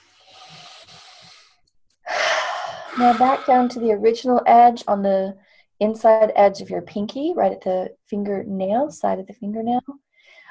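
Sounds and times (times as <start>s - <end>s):
person drawing a big breath in and exhaling: 0.0s - 3.8s, 10.1s - 10.5s
speech: 3.0s - 10.0s.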